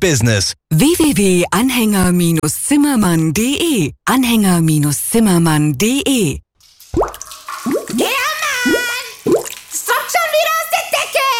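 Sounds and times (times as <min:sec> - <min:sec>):
speech: 0:00.0 - 0:07.1
water dripping from a leak: 0:06.6 - 0:11.3.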